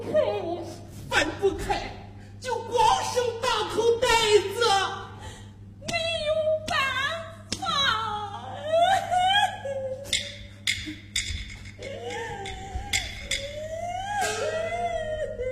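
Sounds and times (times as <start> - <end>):
woman crying: 0.0 - 0.9, 4.6 - 10.6, 11.8 - 15.4
low steady hum: 0.0 - 15.4.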